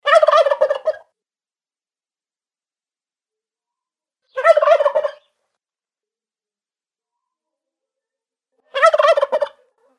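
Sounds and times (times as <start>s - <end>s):
turkey gobbling: 0.0s - 1.2s, 4.3s - 5.3s, 8.7s - 9.7s.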